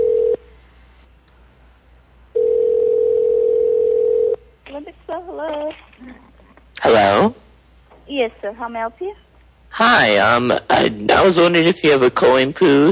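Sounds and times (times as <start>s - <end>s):
phone line ringback tone on a call to a spa: 0.0s - 0.4s, 2.4s - 4.4s
speech: 8.2s - 12.9s.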